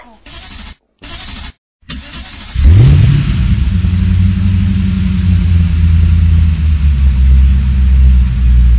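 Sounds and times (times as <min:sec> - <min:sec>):
car engine revving: 0:01.9 - 0:08.7.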